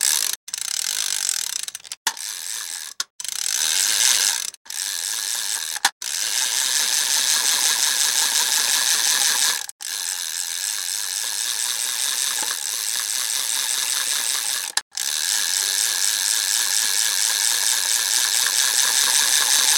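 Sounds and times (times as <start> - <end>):
fishing rod reel spinning: 0.0 - 19.7.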